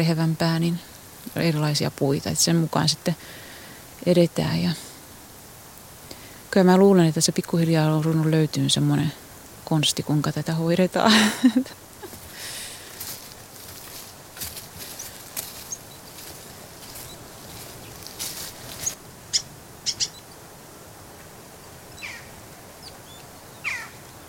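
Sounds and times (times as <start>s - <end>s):
speech: 0.0s - 3.4s, 4.0s - 4.9s, 6.5s - 11.8s
steady low hiss: 0.0s - 24.2s
jackdaw calling near its nest in a shoreline aspen hollow: 12.0s - 20.4s, 22.0s - 24.0s.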